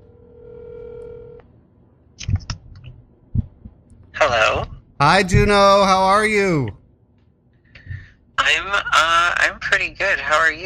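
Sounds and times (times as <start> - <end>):
telephone electronic tone through a speakerphone: 0.0 - 1.4
speech: 5.0 - 6.8, 8.5 - 10.6.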